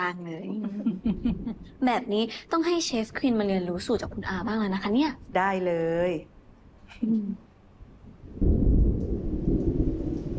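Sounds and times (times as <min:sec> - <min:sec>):
speech: 0:00.1 - 0:06.3, 0:06.9 - 0:07.4
deep rumble of thunder: 0:08.0 - 0:10.3
heavy rain: 0:08.2 - 0:10.3.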